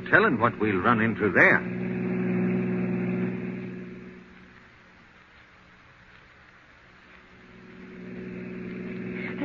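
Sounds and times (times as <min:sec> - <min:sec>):
car engine roaring at speed: 0:00.0 - 0:05.2, 0:07.2 - 0:09.4
rushing road noise: 0:00.0 - 0:09.4
speech: 0:00.1 - 0:01.8.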